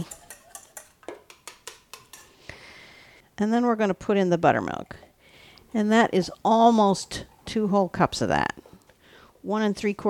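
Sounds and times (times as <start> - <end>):
egg whisked with a whisk or fork clinking against the bowl: 0.0 - 2.4
speech: 3.4 - 5.1, 5.7 - 8.6, 9.4 - 10.0.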